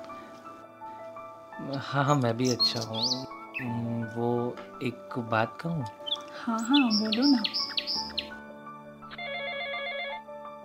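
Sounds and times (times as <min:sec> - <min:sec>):
speech: 0:01.6 - 0:07.7
phone ringing with a warbling electronic ringtone: 0:09.1 - 0:10.4.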